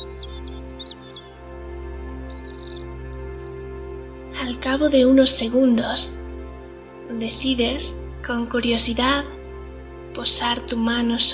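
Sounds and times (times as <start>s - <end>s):
small birds chirping and trilling: 0.0s - 3.9s
speech: 4.4s - 6.2s, 7.2s - 9.4s, 10.2s - 11.3s.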